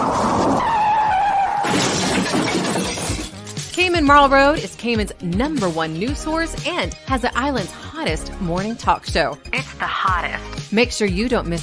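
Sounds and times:
tires screeching: 0.0 - 2.0
metal crunching in a car crash: 1.5 - 3.9
debris clattering: 1.6 - 3.9
glass breaking in a car crash: 1.6 - 3.9
speech: 4.0 - 11.6.

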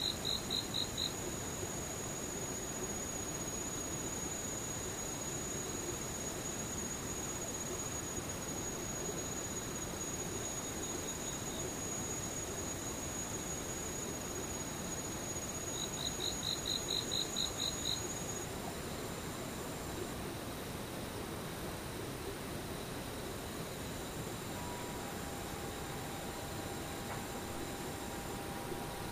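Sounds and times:
insects trilling: 0.0 - 29.1
faint mid-pitched tone: 24.3 - 29.1.

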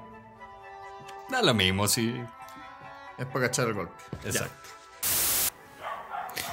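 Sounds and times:
speech: 1.3 - 2.4, 3.2 - 4.8
angry dog barking outside: 5.8 - 6.5.

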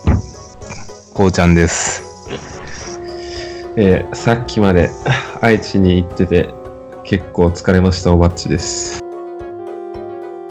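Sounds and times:
low thump: 0.0 - 0.3
cicadas droning: 0.0 - 3.8
speech: 1.2 - 2.5, 3.8 - 9.0.

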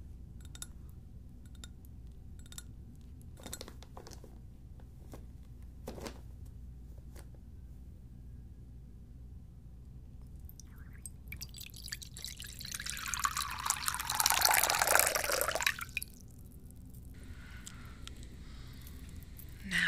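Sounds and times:
faint drips and clinks: 10.4 - 17.1
water pouring into a vessel to steep: 10.5 - 16.4.

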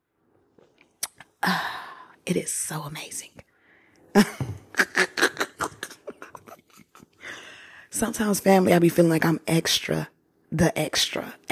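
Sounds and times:
mouth clicks: 0.8 - 1.3
speech: 1.5 - 1.7, 2.3 - 3.4, 4.2 - 4.4, 8.0 - 11.4.

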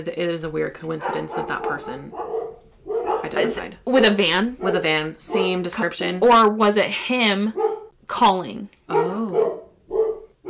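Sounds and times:
speech: 0.0 - 2.4, 3.3 - 9.1
dogs barking: 0.9 - 3.8, 4.4 - 5.6, 7.5 - 8.0, 8.9 - 10.4.

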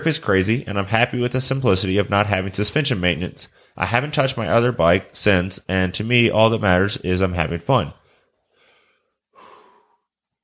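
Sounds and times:
speech: 0.0 - 8.0
labored congested breathing from a stuffy nose: 8.0 - 10.2.

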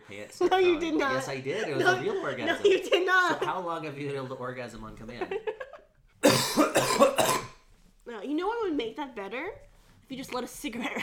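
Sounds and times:
speech: 0.1 - 5.7, 8.1 - 11.0
woman coughing: 6.2 - 7.6.

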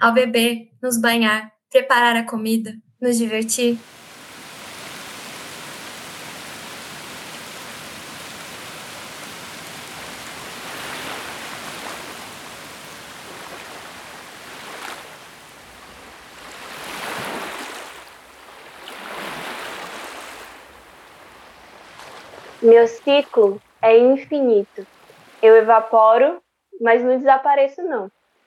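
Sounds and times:
speech: 0.0 - 4.0, 22.7 - 28.2
waves washing in: 3.6 - 23.8, 24.8 - 25.6
flowing water rushing: 3.8 - 23.9, 24.8 - 25.6.

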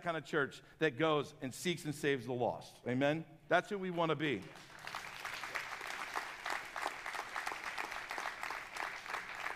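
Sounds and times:
speech: 0.0 - 4.7
audience clapping: 4.3 - 9.5.

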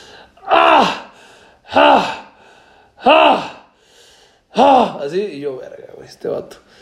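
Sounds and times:
voice imitating strained grunts of a man lifting weights: 0.4 - 1.0, 1.7 - 2.4, 3.0 - 3.7, 4.6 - 5.0
speech: 4.6 - 6.8.

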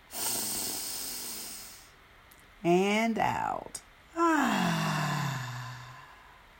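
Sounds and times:
long deep breathy inhale: 0.0 - 2.0, 4.2 - 6.5
speech: 2.6 - 4.6.

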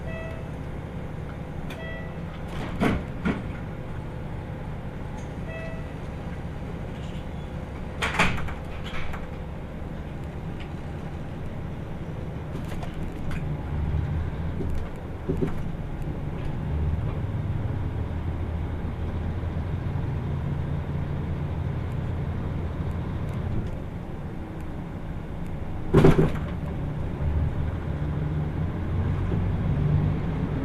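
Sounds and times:
limited express diesel train wheels and motor rumbling inside the cabin: 0.0 - 30.6
sharp clanks and knocks inside a train: 2.4 - 3.6, 8.0 - 9.4, 14.6 - 15.7, 25.9 - 26.6.

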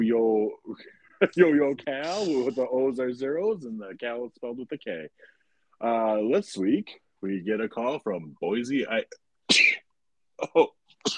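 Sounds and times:
speech: 0.0 - 9.6, 10.4 - 11.1
person sneezing: 2.0 - 2.6, 9.5 - 9.8.

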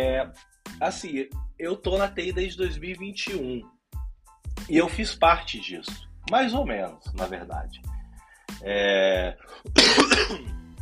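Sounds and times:
speech: 0.0 - 3.8, 4.6 - 8.0, 8.6 - 10.6
harsh coughing: 9.6 - 10.5
rasping throat clearing: 9.7 - 10.5.

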